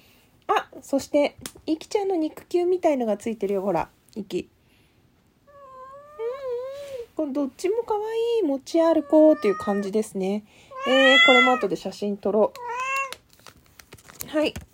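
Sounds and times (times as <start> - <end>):
speech: 0.8 - 4.6, 7.2 - 12.7, 14.3 - 14.7
cat meowing: 5.5 - 6.9, 8.9 - 10.0, 10.7 - 11.8, 12.5 - 13.2
package being unboxed: 12.5 - 14.7.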